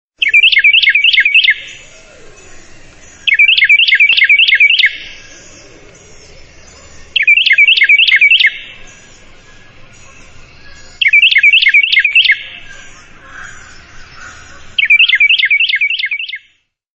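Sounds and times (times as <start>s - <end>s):
wren song: 0.2s - 16.8s.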